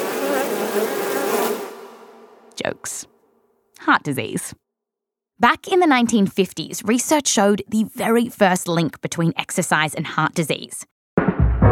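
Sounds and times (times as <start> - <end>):
swarm of killer bees buzzing: 0.0 - 2.2
speech: 0.8 - 1.0, 2.6 - 3.1, 3.8 - 4.6, 5.4 - 10.9.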